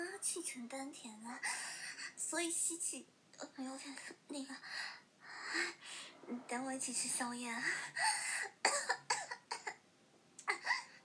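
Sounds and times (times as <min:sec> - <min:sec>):
speech: 0:00.2 - 0:08.9
harsh coughing after choking on a breath: 0:08.0 - 0:09.8.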